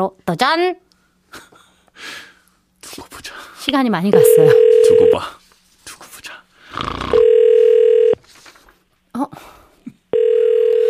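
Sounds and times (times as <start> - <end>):
speech: 0.0 - 2.3, 2.9 - 5.4
telephone ringback tone: 4.2 - 5.2, 7.2 - 8.2, 10.2 - 10.8.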